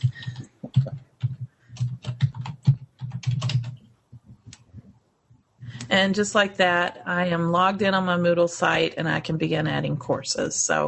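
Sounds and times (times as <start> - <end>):
rapid typing on a computer keyboard while logging in: 0.0 - 3.9
speech: 6.0 - 10.8.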